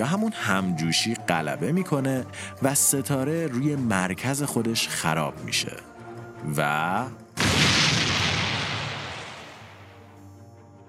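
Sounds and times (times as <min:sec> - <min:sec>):
speech: 0:00.0 - 0:07.9
huge explosion sound effect with loud broadband boom: 0:07.4 - 0:10.0.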